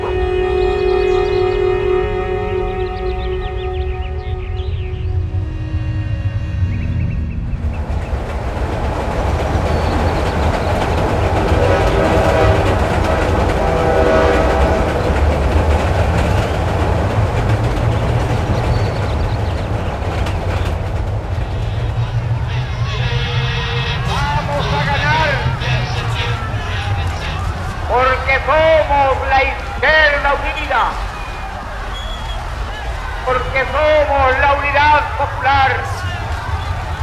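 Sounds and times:
steam train horn sounding: 0.0 - 7.3, 9.8 - 19.7, 21.3 - 28.2
steam train running on rails: 0.0 - 37.0
murmur of crowd voices: 8.6 - 37.0.

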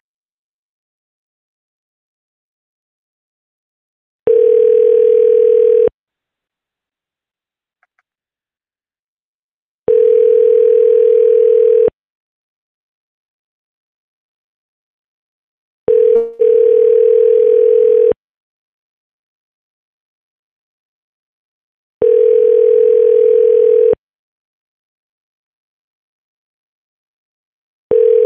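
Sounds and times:
telephone dial tone while placing a call: 4.3 - 6.0, 9.9 - 12.0, 15.9 - 18.2, 22.0 - 24.0, 27.9 - 28.2
click: 7.8 - 8.2.

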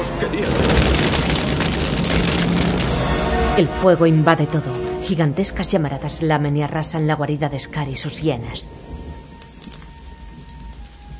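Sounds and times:
heavy rain pouring down and putting out a fire: 0.0 - 4.0, 8.7 - 11.1
speech: 3.6 - 9.0.

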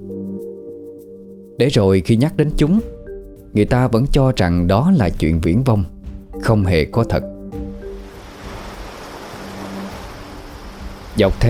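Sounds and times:
speech: 1.6 - 3.0, 3.6 - 7.3, 11.2 - 11.4
waves lapping on the shore beside fishing villages: 7.9 - 11.4.

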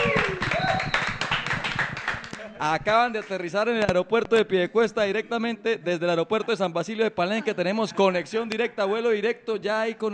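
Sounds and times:
audience applauding at a Caribbean music festival: 0.0 - 2.6
whistles from the audience: 0.1 - 1.3
speech: 2.6 - 10.1.

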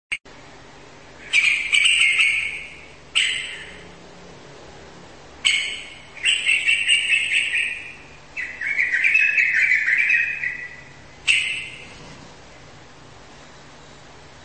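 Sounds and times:
bird chattering song: 1.2 - 3.9, 5.4 - 12.0.

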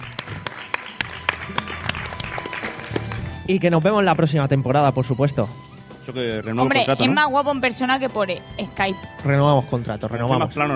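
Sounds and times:
faint applause from a small group: 0.0 - 3.4
speech: 3.5 - 10.7.

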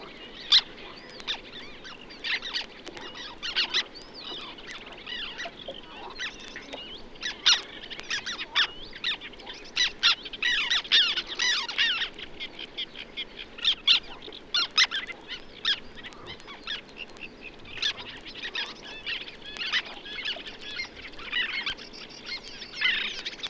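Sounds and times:
flock of Black Terns calling while hunting insects: 0.0 - 23.4.

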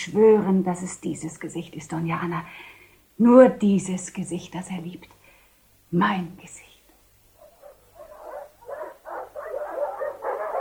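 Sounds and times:
speech: 0.0 - 5.2, 5.9 - 6.6
dogs barking: 7.4 - 10.6.

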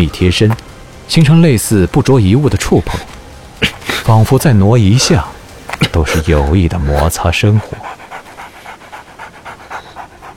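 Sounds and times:
speech: 0.0 - 7.9
dog sniffing around: 2.9 - 10.3.

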